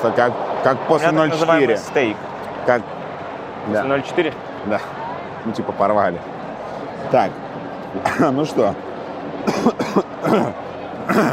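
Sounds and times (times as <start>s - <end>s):
speech: 0.0s - 3.0s, 3.6s - 6.3s, 7.0s - 8.9s, 9.6s - 11.3s
person coughing: 9.5s - 11.3s.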